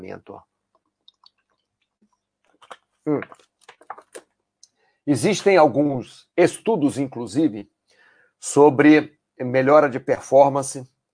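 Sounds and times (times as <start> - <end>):
speech: 0.0 - 0.5, 3.0 - 3.5, 5.0 - 7.7, 8.4 - 10.9
person sipping water with wet mouth clicks and slurps: 2.5 - 4.8
loud gulp of water: 2.6 - 4.3.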